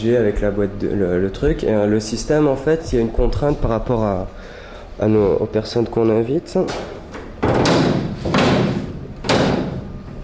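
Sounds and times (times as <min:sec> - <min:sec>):
speech: 0:00.0 - 0:07.0
door opening or slamming: 0:06.7 - 0:10.2.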